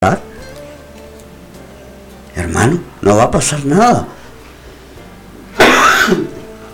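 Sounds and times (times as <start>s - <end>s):
speech: 0.0s - 0.3s, 2.4s - 4.2s
person giving a harsh dry cough: 5.6s - 6.4s.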